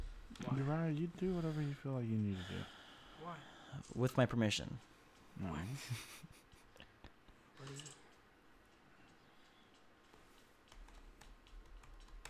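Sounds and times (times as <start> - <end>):
faint low hum: 0.0 - 12.2
speech: 0.6 - 6.4, 7.6 - 8.0
typing on a computer keyboard: 9.4 - 12.2.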